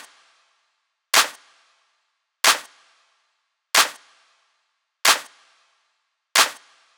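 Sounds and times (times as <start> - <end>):
hip hop clap percussion: 1.1 - 1.4, 5.1 - 5.3, 6.4 - 6.6.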